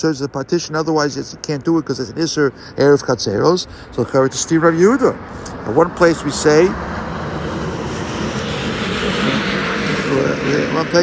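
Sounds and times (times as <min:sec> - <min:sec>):
speech: 0:00.0 - 0:07.0, 0:10.4 - 0:11.0
airplanes flying overhead: 0:00.0 - 0:11.0.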